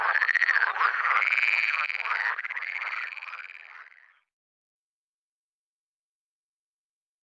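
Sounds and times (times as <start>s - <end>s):
water frog pulsed rattling croak: 0.0s - 4.2s
speech: 1.2s - 3.0s.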